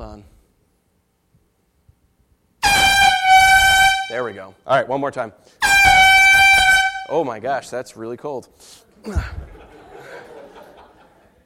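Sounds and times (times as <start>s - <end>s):
air horn blast: 2.6s - 4.6s, 5.6s - 7.3s
speech: 4.1s - 5.9s, 7.1s - 9.6s
laughter: 9.0s - 11.4s.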